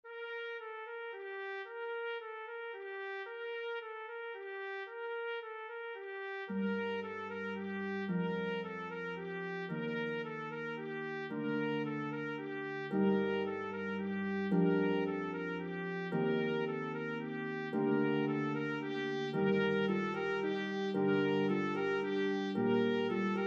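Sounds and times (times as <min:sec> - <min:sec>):
B-flat trumpet: 0:00.0 - 0:23.4
pedal harp: 0:06.6 - 0:23.4.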